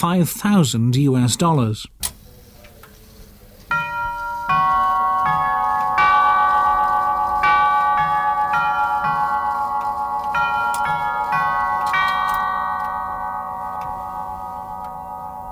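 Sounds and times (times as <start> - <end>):
speech: 0.0 - 2.1
clock movement chiming a melody of bell tones: 3.7 - 15.5.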